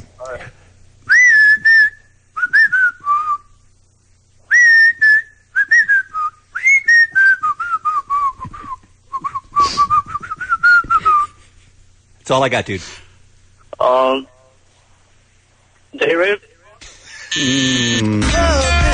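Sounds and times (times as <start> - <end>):
person whistling a melody: 1.1 - 3.4, 4.5 - 11.4
speech: 12.3 - 13.0, 13.8 - 14.3, 16.1 - 16.4, 17.4 - 18.8.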